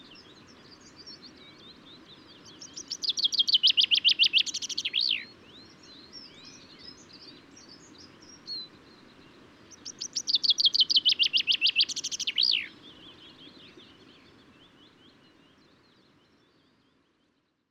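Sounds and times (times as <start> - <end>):
common chaffinch singing: 0.0 - 15.0
soft chirps: 0.0 - 17.6.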